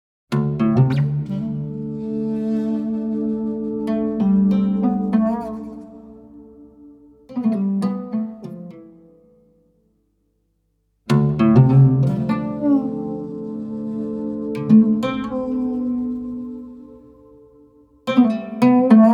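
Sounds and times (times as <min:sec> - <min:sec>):
oud playing: 0:00.3 - 0:09.7, 0:11.1 - 0:19.1.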